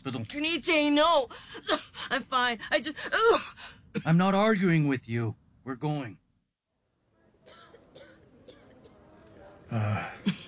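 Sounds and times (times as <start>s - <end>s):
speech: 0.0s - 6.2s, 9.7s - 10.4s
coughing fit with gasping breaths: 7.4s - 9.2s.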